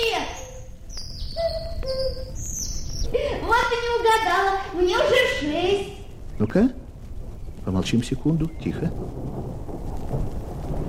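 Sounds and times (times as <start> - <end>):
cuckoo two-note call: 0.0 - 6.8, 7.4 - 9.0
birds chirping: 0.0 - 10.8
insects trilling: 0.0 - 10.8
speech: 4.3 - 6.8, 7.6 - 10.4.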